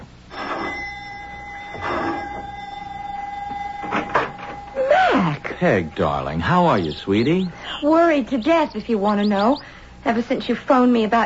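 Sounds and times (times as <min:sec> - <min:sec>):
electric doorbell ringing at a house: 0:00.3 - 0:07.4
speech: 0:05.6 - 0:11.2.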